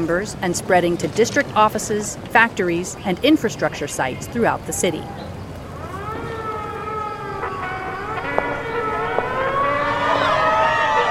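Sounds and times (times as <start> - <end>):
speech: 0.0 - 5.3
gunboat siren shrilling: 5.6 - 11.1.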